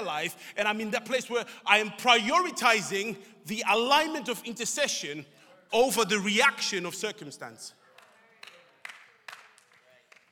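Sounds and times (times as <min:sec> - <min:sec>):
speech: 0:00.1 - 0:07.8
few sparse scattered hand claps: 0:07.9 - 0:10.2.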